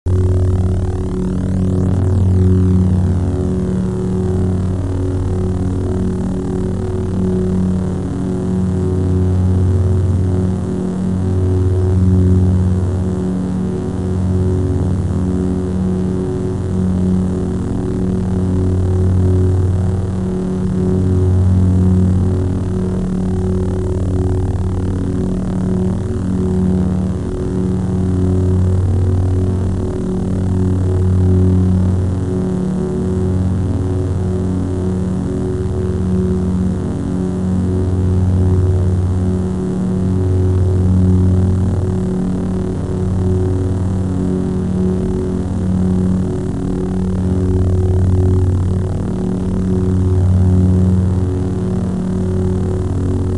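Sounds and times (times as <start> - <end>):
saber drone: 0.1 - 53.3.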